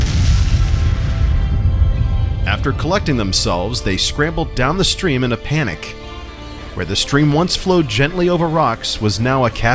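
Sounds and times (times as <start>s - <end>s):
heavy booming explosion: 0.0s - 6.2s
speech: 2.5s - 6.0s, 6.8s - 9.7s.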